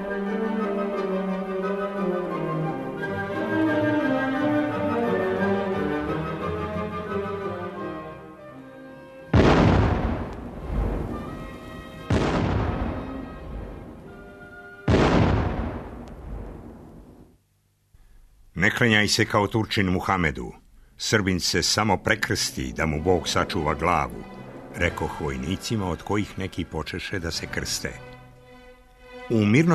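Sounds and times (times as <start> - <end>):
dramatic music: 0.0 - 16.7, 22.1 - 28.2
bursting artillery shells and shrapnel explosions: 9.3 - 17.3
speech: 18.8 - 28.1, 29.3 - 29.7.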